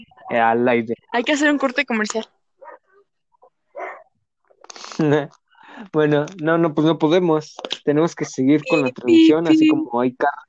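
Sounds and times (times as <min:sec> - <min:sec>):
speech: 0:00.3 - 0:02.4, 0:05.0 - 0:10.4
dogs barking: 0:02.6 - 0:03.0, 0:03.7 - 0:04.2
dog yipping and whining: 0:03.8 - 0:04.1
laughter: 0:08.6 - 0:09.8.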